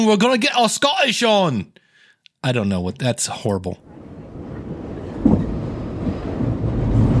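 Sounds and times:
speech: 0.0s - 1.8s, 2.4s - 3.9s
train rumbling: 4.0s - 7.1s.

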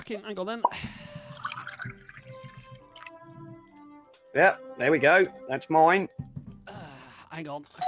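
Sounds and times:
speech: 0.1s - 1.2s, 4.4s - 6.3s, 7.4s - 7.8s
drink being poured into a glass: 1.3s - 3.2s.

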